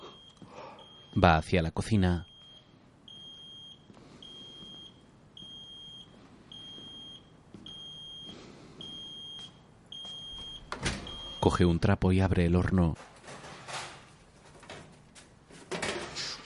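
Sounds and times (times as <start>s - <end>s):
smoke alarm beeping with shrill high-pitched tones: 0.0s - 1.2s, 2.2s - 11.6s
speech: 1.2s - 2.3s, 11.5s - 13.1s.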